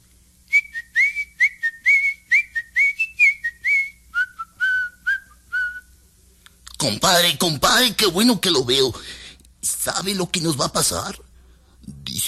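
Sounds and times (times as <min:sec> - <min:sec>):
cheerful whistling: 0:00.5 - 0:06.0
speech: 0:06.8 - 0:11.3.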